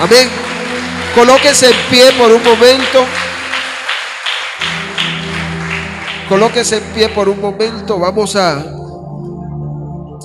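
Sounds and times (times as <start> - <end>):
crowd applauding: 0.0 - 7.6
speech: 0.1 - 0.5, 1.2 - 3.3, 6.3 - 8.8.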